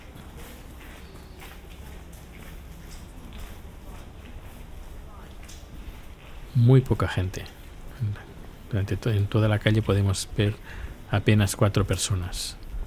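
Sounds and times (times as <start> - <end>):
footsteps crunching on stone street paving: 0.0 - 12.8
hiss of outdoor street ambience: 0.0 - 12.8
speech: 6.6 - 12.6.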